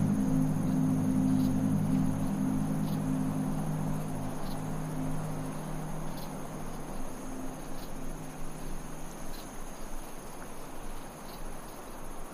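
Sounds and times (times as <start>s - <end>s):
low droning ambient tone: 0.0s - 9.2s
bugs chirping: 0.0s - 12.3s.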